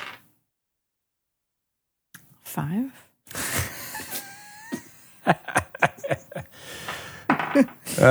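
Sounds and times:
speech: 2.5 - 3.4, 7.6 - 8.0
laughter: 3.3 - 8.0
d20 die clattering across a hard surface: 5.7 - 7.9.

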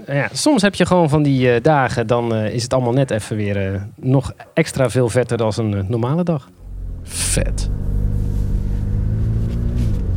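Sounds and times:
speech: 0.0 - 7.9
sports car engine rumble heard on board while driving a small road: 6.6 - 10.1.

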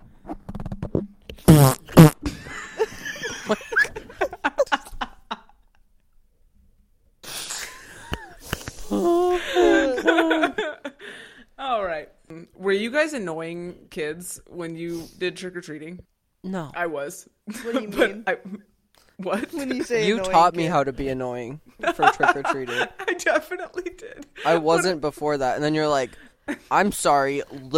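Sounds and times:
fart into the microphone: 0.2 - 2.3, 7.2 - 8.9
people laughing: 2.3 - 5.6, 7.5 - 11.2, 21.8 - 25.0
speech: 13.1 - 18.6, 19.2 - 27.7.

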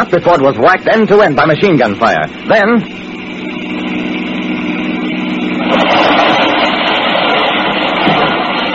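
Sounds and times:
speech: 0.1 - 3.0
getaway car engine roaring as it speeds away: 2.3 - 8.7.

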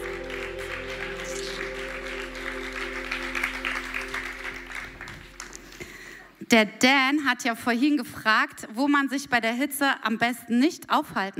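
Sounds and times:
low musical hum: 0.0 - 5.9
audience applauding a band: 0.0 - 6.2
speech: 6.5 - 11.3.

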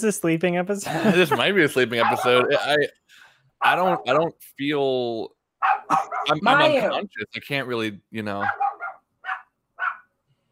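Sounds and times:
speech: 0.0 - 8.8
laughter: 0.8 - 2.9, 5.9 - 7.4
dog barking: 1.9 - 2.7, 3.6 - 4.2, 5.6 - 6.5, 8.4 - 10.1.

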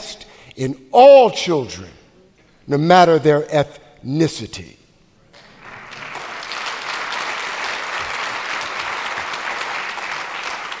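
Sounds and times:
speech: 0.6 - 2.0, 2.7 - 4.8
large audience applause: 5.4 - 10.7.

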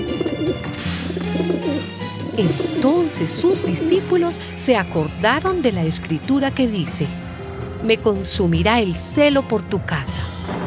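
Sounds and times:
doves cooing: 0.0 - 4.2
speech: 2.4 - 7.2, 7.8 - 10.5.

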